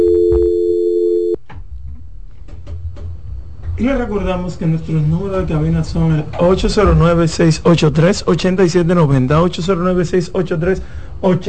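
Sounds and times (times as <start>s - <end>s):
telephone tone from an incoming call: 0.0s - 1.4s
speech: 3.8s - 11.4s.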